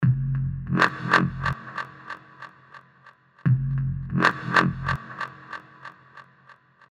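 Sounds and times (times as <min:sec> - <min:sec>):
synth bass in F at 140 BPM: 0:00.0 - 0:01.8, 0:03.5 - 0:05.4.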